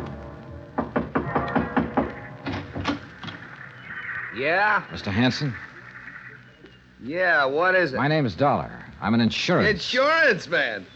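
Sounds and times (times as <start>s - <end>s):
knocking on the wooden door of a beach house: 0.8s - 3.1s
speech: 4.4s - 5.7s, 7.0s - 10.9s.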